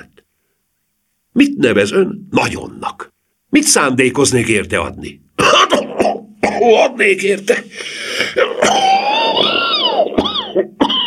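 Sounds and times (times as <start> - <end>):
speech: 1.6 - 5.5, 6.6 - 9.6
person imitating a man's choking coughing fit: 5.4 - 6.8, 8.2 - 11.0.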